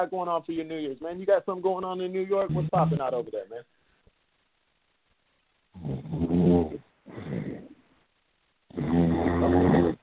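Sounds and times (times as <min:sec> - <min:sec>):
speech: 0:00.0 - 0:03.8
person snoring: 0:02.5 - 0:03.1, 0:05.8 - 0:07.8, 0:08.7 - 0:10.0.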